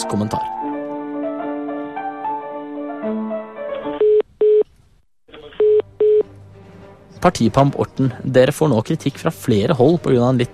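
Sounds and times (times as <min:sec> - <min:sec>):
speech: 0:00.0 - 0:00.6, 0:07.2 - 0:10.5
double-buzz telephone ringing tone on the line: 0:03.9 - 0:04.6, 0:05.5 - 0:06.2.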